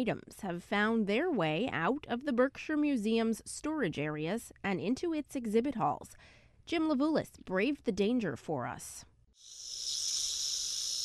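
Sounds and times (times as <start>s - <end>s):
speech: 0.0s - 10.1s
snake hissing: 9.4s - 11.0s.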